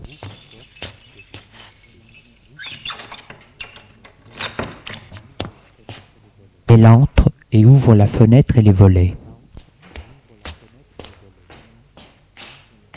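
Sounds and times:
metal keys jingling and scraping in a lock: 0.0 - 5.9
speech: 6.7 - 9.2.

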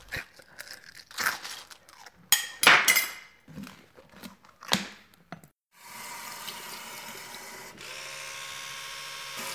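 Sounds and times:
dishes and cutlery clinking at breakfast: 2.3 - 3.4.

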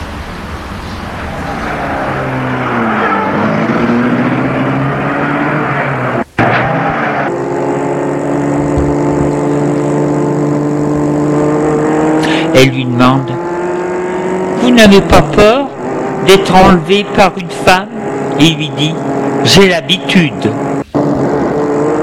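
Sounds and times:
sports car engine starting and revving: 1.7 - 22.0
speech: 14.8 - 15.7, 16.3 - 20.7.

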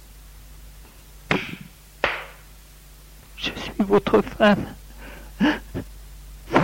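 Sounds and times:
man slapping a woman across the face: 1.3 - 2.4
speech: 3.4 - 4.8, 5.4 - 5.9.

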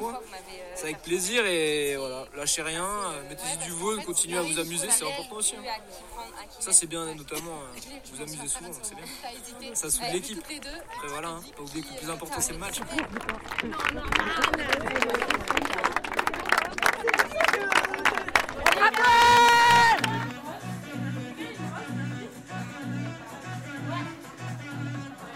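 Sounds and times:
speech: 0.0 - 15.6
lively party crowd chattering: 0.0 - 25.3
party crowd clapping: 10.4 - 20.5
party crowd loud collective cheer: 12.8 - 20.5.

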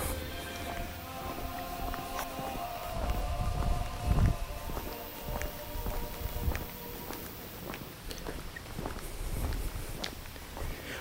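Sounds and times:
distant group of singers singing across a village: 0.0 - 8.6
footsteps tapping: 0.0 - 10.9
quiet outdoor ambience: 0.0 - 10.9.

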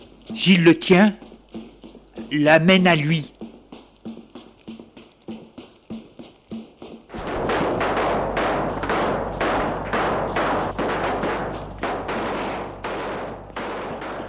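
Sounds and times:
speech: 0.4 - 1.2, 2.3 - 3.4
rapid gunshots and automatic fire: 7.1 - 14.2.

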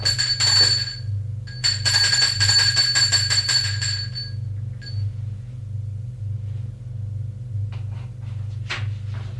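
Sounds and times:
bright electronic doorbell chime: 0.0 - 5.1
steady low hum: 0.0 - 9.3.

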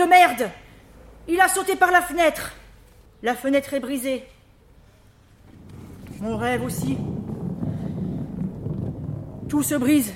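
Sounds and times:
speech: 0.2 - 0.6, 1.3 - 2.6, 3.2 - 4.4, 6.2 - 7.2, 9.5 - 10.1
wind gusts on a beach buffeting the microphone: 5.4 - 10.1.

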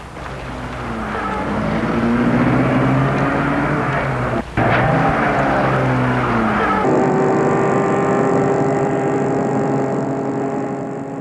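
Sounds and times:
car engine roaring while driving: 0.0 - 11.2.

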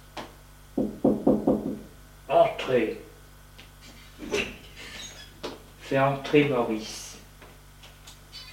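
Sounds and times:
knocking on a wooden door: 0.8 - 1.9
speech: 2.7 - 3.1, 5.9 - 7.0.

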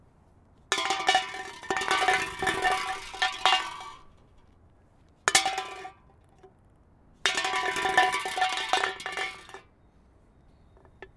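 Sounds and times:
metal can rolling across hard ground: 0.7 - 4.1, 5.3 - 6.0, 7.3 - 9.6.

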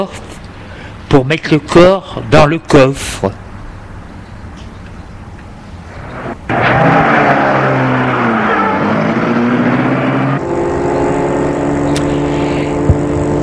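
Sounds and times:
speech: 0.0 - 0.3, 1.1 - 3.4
car engine running while driving: 5.2 - 13.4.

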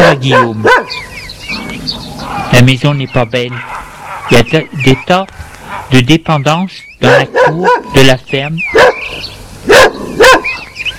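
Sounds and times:
speech: 0.0 - 1.1, 1.8 - 9.3
black dog barking while running in a farmyard: 0.1 - 1.0, 3.6 - 4.4, 7.0 - 8.0, 8.7 - 9.1, 9.7 - 10.6.

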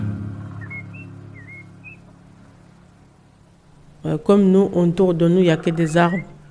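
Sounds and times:
steady low hum: 0.0 - 6.5
whistled chirps imitating calls of several different birds: 0.6 - 2.1, 5.0 - 6.5
speech: 4.0 - 6.3.

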